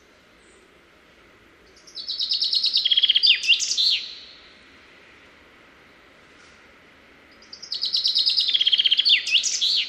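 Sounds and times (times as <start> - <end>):
common chaffinch Fringilla coelebs song: 1.5 - 5.0, 7.1 - 9.8.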